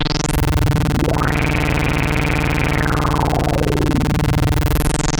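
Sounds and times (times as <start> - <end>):
object wobbling: 0.2 - 5.0.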